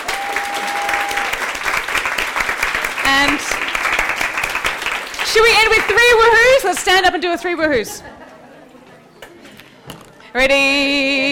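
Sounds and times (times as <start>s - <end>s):
audience applause: 0.0s - 6.6s
speech: 5.3s - 8.2s, 10.3s - 11.2s
laughter: 7.8s - 9.2s.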